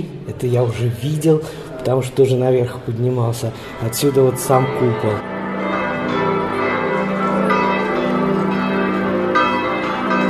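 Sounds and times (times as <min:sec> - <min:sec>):
church bells pealing from a Gothic campanile bell tower: 0:00.3 - 0:10.2
speech: 0:00.4 - 0:05.3.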